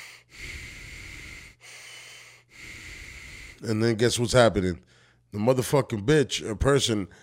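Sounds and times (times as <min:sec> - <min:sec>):
person imitating slow breathing through the nose: 0:00.0 - 0:03.6
speech: 0:03.6 - 0:07.2.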